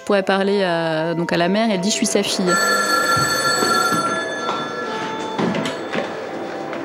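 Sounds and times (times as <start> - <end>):
speech: 0.0 - 3.4
telephone ringing with a bright metallic bell tone: 2.5 - 6.6.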